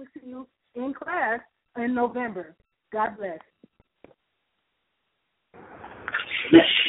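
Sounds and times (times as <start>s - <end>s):
speech: 0.0s - 3.5s, 6.3s - 6.8s
sharp sneeze: 6.1s - 6.8s.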